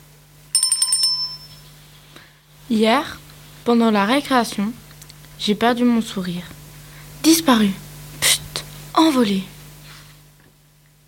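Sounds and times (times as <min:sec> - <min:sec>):
bright bell chime signaling to turn the page: 0:00.5 - 0:01.7
speech: 0:02.7 - 0:04.8, 0:05.4 - 0:06.6, 0:07.2 - 0:07.8, 0:09.0 - 0:09.5.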